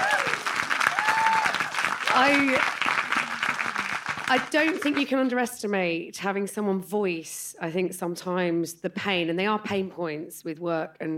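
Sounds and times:
voices calling out and cheering: 0:00.0 - 0:05.0
crowd clapping: 0:00.0 - 0:05.4
speech: 0:02.2 - 0:02.8, 0:04.3 - 0:11.1.

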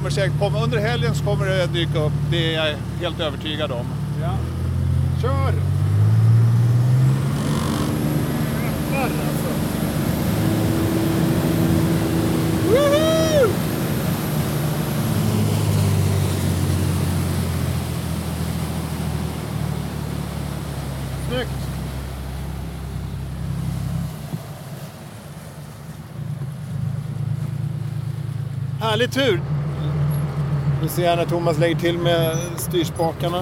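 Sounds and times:
rescue boat engine droning at high speed: 0:00.0 - 0:33.4
water noise: 0:00.0 - 0:33.4
speech: 0:00.1 - 0:04.6, 0:05.2 - 0:05.8, 0:09.0 - 0:09.6, 0:12.7 - 0:13.6, 0:21.4 - 0:21.6, 0:28.8 - 0:29.6, 0:30.8 - 0:33.4.

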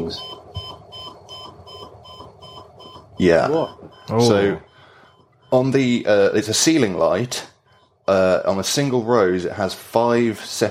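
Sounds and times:
speech: 0:00.0 - 0:00.4, 0:03.2 - 0:04.7, 0:05.5 - 0:07.5, 0:08.1 - 0:10.6
alarm clock ringing with electronic beeps: 0:00.0 - 0:08.4
low hum: 0:00.0 - 0:10.6.

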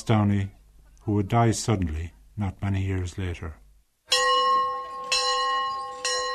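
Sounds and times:
speech: 0:00.0 - 0:03.6
school bell ringing: 0:04.1 - 0:06.3.

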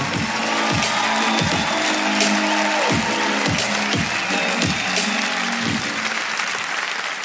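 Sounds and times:
steady low thumping beat: 0:00.0 - 0:05.1
large crowd applauding at a comedy show: 0:00.0 - 0:07.2.

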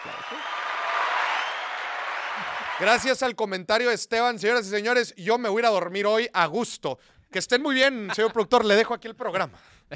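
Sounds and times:
crowd applause: 0:00.0 - 0:03.1
speech: 0:02.4 - 0:09.9
laughter: 0:07.9 - 0:08.6.

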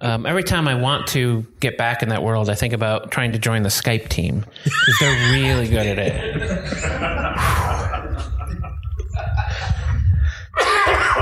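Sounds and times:
speech: 0:00.0 - 0:07.7
laughter: 0:04.6 - 0:11.1
stifled cough from a person trying not to cough: 0:10.6 - 0:11.1.

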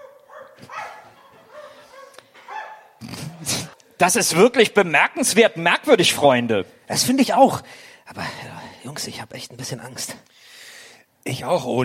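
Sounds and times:
dog barking in the distance: 0:00.0 - 0:03.0
speech: 0:03.0 - 0:10.5, 0:11.2 - 0:11.8.

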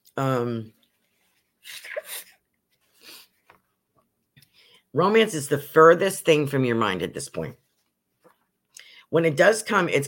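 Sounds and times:
speech: 0:00.2 - 0:00.8, 0:04.9 - 0:07.6, 0:09.1 - 0:10.0
person sneezing: 0:01.7 - 0:02.4
sniffs: 0:02.9 - 0:03.4.

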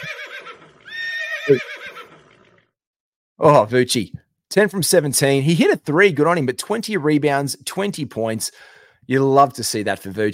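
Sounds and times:
horse neighing: 0:00.0 - 0:02.7
speech: 0:01.5 - 0:01.8, 0:03.4 - 0:10.3.

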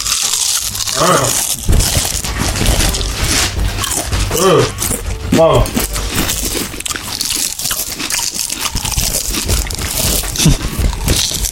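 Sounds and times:
crisp bites and chewing of food: 0:00.0 - 0:11.5
speech: 0:01.0 - 0:02.0, 0:04.4 - 0:05.8.

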